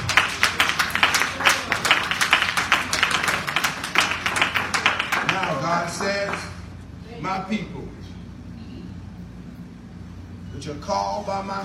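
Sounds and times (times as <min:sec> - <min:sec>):
audience clapping hands: 0:00.0 - 0:06.7
speech: 0:10.9 - 0:11.6.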